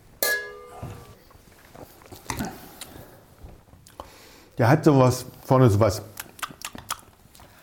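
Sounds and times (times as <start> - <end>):
glasses clinking for a toast: 0.2 - 1.2
speech: 4.6 - 6.1.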